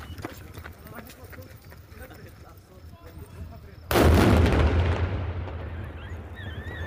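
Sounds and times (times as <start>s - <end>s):
controlled detonation of explosive device in garbage container in Sahnaya Syria: 3.9s - 6.8s.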